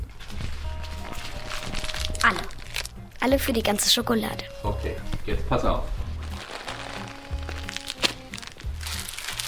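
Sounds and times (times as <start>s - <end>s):
plastic bags of gummy bears crinkling and rustling: 0.0s - 3.0s, 6.1s - 9.4s
speech: 3.2s - 6.0s.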